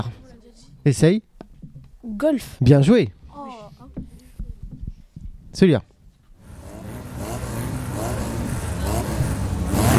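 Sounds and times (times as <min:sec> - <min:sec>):
speech: 0:00.0 - 0:00.2, 0:00.8 - 0:01.3, 0:02.0 - 0:03.6, 0:05.6 - 0:05.9
motorcycle engine revving: 0:06.4 - 0:09.9.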